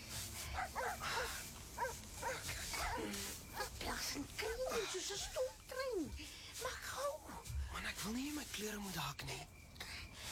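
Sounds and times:
steady hiss of outdoor noise: 0.0s - 10.3s
dogs barking: 0.4s - 5.6s
speech: 3.0s - 9.6s.

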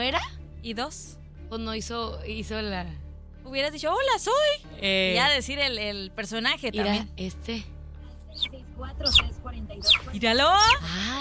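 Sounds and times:
speech: 0.0s - 7.7s, 8.4s - 11.1s
small bird chirping: 8.3s - 10.9s.

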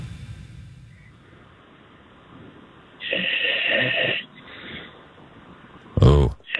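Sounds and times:
man snoring over a tinny phone line on a radio call-in: 3.0s - 4.3s, 6.0s - 6.5s
faint phone line hiss: 3.0s - 4.5s.

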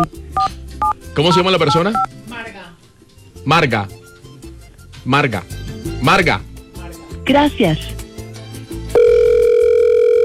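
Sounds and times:
speech: 1.2s - 2.4s, 3.4s - 4.0s, 5.0s - 6.5s, 7.3s - 8.0s
telephone tone on a call: 9.0s - 10.2s.

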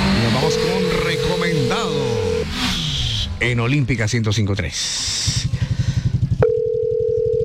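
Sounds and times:
low rhythmic pulsing throb: 0.0s - 6.7s
telephone ringing out on an unanswered call: 0.4s - 2.4s, 6.4s - 7.4s
speech: 3.4s - 5.4s.

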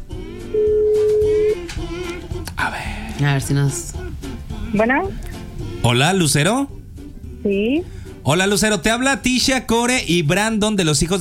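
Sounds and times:
telephone line tone as a call is dialed: 0.6s - 1.4s
speech: 2.7s - 4.0s, 4.7s - 6.7s, 7.4s - 11.1s.

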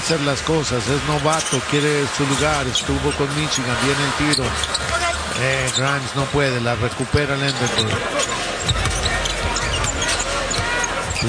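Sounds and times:
steady crowd noise: 0.0s - 11.2s
speech: 0.1s - 8.8s
basketball dribbled on the court during a game: 8.6s - 11.2s.

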